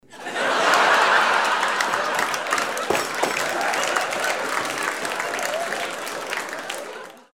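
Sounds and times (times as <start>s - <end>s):
laughter: 0.1s - 7.3s
applause: 0.2s - 7.3s
table: 2.3s - 3.9s.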